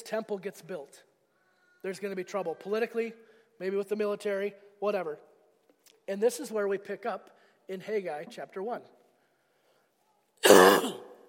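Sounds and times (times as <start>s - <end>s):
speech: 0.1s - 1.1s, 1.8s - 5.3s, 6.1s - 9.0s
cough with a rough throaty rasp: 10.4s - 11.2s.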